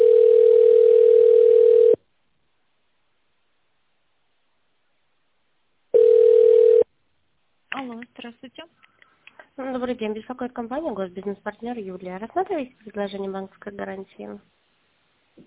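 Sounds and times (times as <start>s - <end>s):
telephone line tone while connecting to a call-centre operator: 0.0s - 2.0s, 6.0s - 6.9s
speech: 9.8s - 14.6s.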